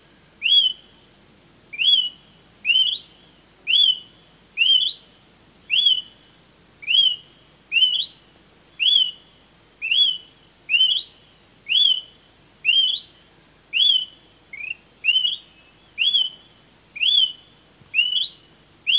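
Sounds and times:
smoke-colored pewee subspecies zarumae repeating a rising whistled note: 0.4 - 0.8, 1.7 - 3.1, 3.7 - 5.0, 5.7 - 6.1, 6.8 - 8.2, 8.8 - 9.2, 9.8 - 11.1, 11.7 - 13.1, 13.7 - 16.4, 17.0 - 18.9.

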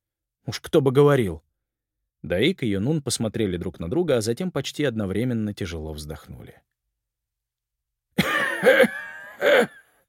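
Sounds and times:
speech: 0.5 - 1.5, 2.2 - 6.7, 8.2 - 9.8
man coughing: 8.2 - 9.9.

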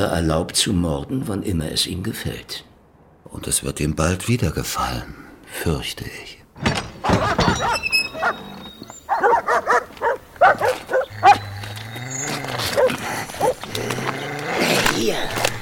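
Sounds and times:
speech: 0.0 - 2.7, 3.3 - 7.4, 13.4 - 15.5
dogs barking: 7.0 - 14.6.

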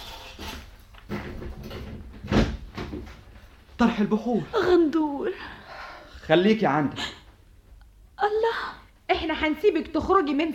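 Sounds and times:
door thud: 1.1 - 3.2
speech: 3.8 - 5.6, 6.3 - 7.2, 9.2 - 10.5.

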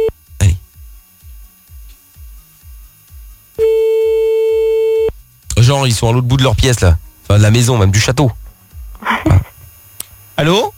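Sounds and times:
telephone ringback tone while redialing a call: 3.6 - 5.1
speech: 5.7 - 8.4, 10.4 - 10.7.

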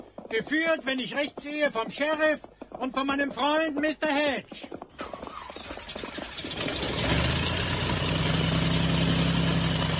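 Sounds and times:
speech: 0.3 - 4.8
aeroplane engine starting up and idling: 5.0 - 9.9.

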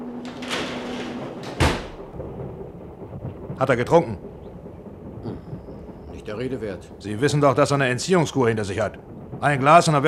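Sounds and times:
heavy door being shut: 0.1 - 2.2
speech: 3.6 - 4.4, 6.3 - 10.0.

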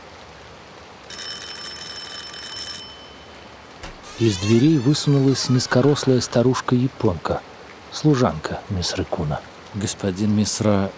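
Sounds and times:
heavy rain: 0.0 - 1.3, 3.0 - 10.9
doorbell ringing at a house in a suburb: 1.1 - 3.6
speech: 4.2 - 10.9.

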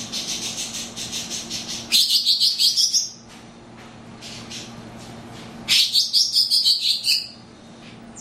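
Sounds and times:
greater green leafbird song: 0.1 - 3.2, 5.7 - 7.4.

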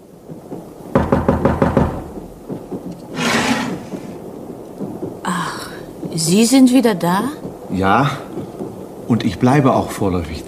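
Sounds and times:
knuckles rapping on a compartment door aboard a train: 1.0 - 2.2
broad rushing noise: 3.0 - 4.4
speech: 6.2 - 8.3, 9.1 - 10.4.

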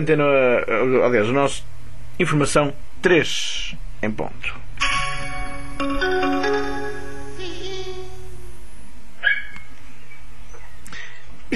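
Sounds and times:
speech: 0.0 - 4.6
steady hum: 0.0 - 11.5
small dog barking: 9.2 - 9.7.

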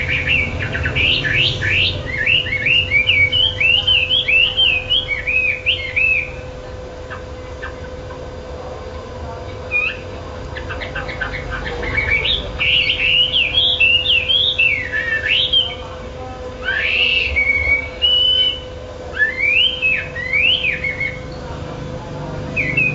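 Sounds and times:
bird singing clear whistled phrases: 0.0 - 6.4, 9.7 - 15.9, 16.6 - 21.4, 22.5 - 22.9
steady low hum: 0.0 - 22.9.

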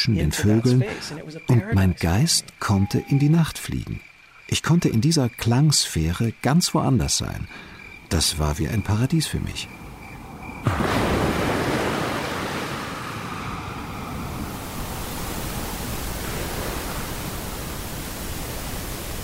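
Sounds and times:
speech: 0.0 - 9.8, 10.6 - 11.2
ocean waves washing in as surf: 9.6 - 19.2.

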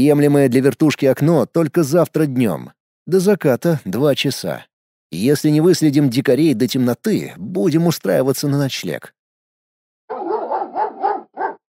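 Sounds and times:
speech: 0.0 - 9.2
dog barking: 10.1 - 11.6.

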